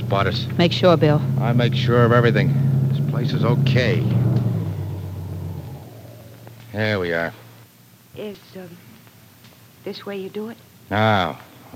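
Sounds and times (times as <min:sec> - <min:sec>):
car engine rumbling as the car stops near a lake: 0:00.0 - 0:07.7
speech: 0:00.1 - 0:04.3, 0:06.8 - 0:07.4, 0:08.2 - 0:08.9, 0:09.8 - 0:11.7.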